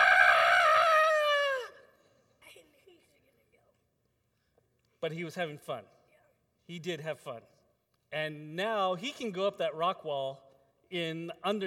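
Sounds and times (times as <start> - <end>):
person imitating the scared yell of someone riding a zipline: 0.0 - 1.9
speech: 5.0 - 6.0, 6.7 - 11.6.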